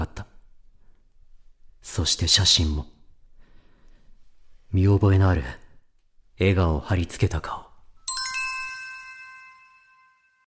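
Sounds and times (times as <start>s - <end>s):
speech: 2.0s - 3.0s, 4.8s - 5.6s, 6.4s - 7.6s
electronic chime announcing an incoming email: 8.1s - 10.4s.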